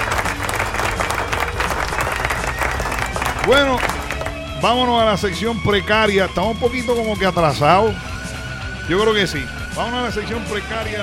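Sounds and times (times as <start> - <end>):
crowd applauding with dense steady clapping: 0.0 - 4.6
speech: 3.4 - 4.0, 4.6 - 8.1, 8.9 - 11.0.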